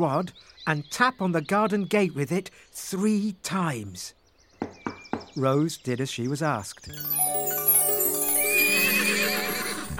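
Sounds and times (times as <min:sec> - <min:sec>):
speech: 0:00.0 - 0:04.8, 0:05.4 - 0:07.5
horse neighing: 0:08.6 - 0:09.9.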